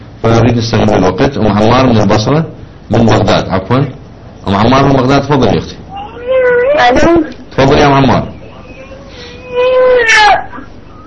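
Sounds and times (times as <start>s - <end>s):
speech: 0.2s - 5.8s, 6.8s - 8.4s
young child crying close to a caller's telephone: 5.9s - 7.4s, 8.6s - 11.0s.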